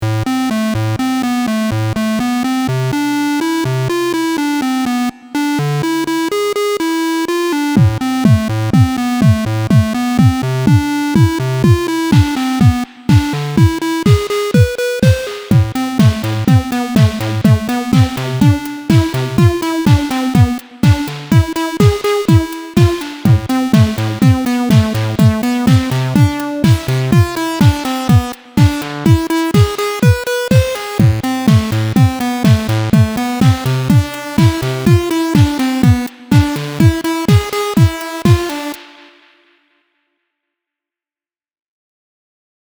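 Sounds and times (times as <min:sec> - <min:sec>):
synthesizer lead with reverb and delay: 0:00.1 - 0:39.4
synthesizer drums with reverb and delay: 0:07.8 - 0:39.5.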